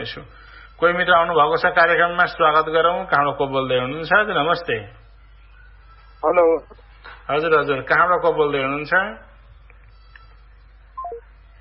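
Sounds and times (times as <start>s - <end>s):
speech: 0.0s - 5.0s, 6.2s - 9.3s
low steady hum: 0.0s - 11.6s
telephone line disconnected tone after a call is cut off: 11.0s - 11.2s.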